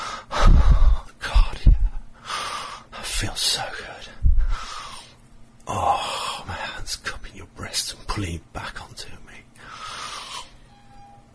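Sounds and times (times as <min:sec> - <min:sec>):
heavy breathing: 0:00.0 - 0:03.0, 0:04.1 - 0:05.2, 0:09.6 - 0:10.7
speech: 0:03.2 - 0:03.8, 0:05.7 - 0:05.9, 0:08.2 - 0:08.8.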